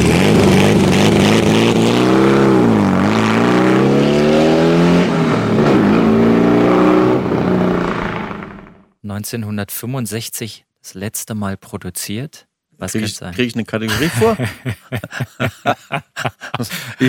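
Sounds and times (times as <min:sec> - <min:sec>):
1965 Porsche 356 sports car engine revving: 0:00.0 - 0:08.8
speech: 0:09.2 - 0:17.0
laughter: 0:13.8 - 0:17.0.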